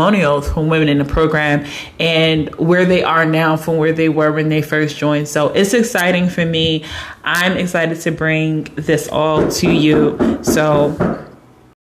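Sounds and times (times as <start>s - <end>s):
speech: 0.0s - 11.3s
sharp knock on a door: 9.3s - 11.3s.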